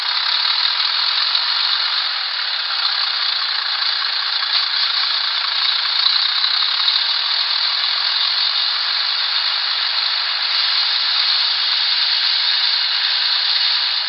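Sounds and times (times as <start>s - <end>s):
diesel engine: 0.0s - 14.0s.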